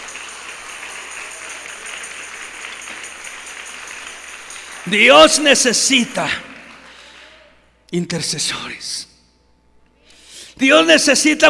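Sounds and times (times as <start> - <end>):
audience applauding: 0.0 - 7.7
speech: 4.9 - 6.5, 7.9 - 9.1, 10.6 - 11.4.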